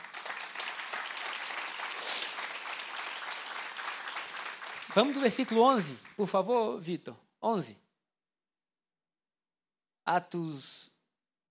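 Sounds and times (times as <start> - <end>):
crowd clapping in a reverberant room: 0.0 - 6.5
speech: 5.0 - 7.8, 10.1 - 10.9.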